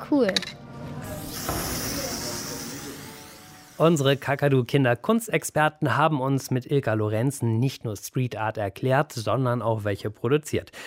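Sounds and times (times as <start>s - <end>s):
speech: 0.0s - 0.6s, 3.8s - 10.8s
chalk spray can spraying onto a wall: 1.0s - 4.3s.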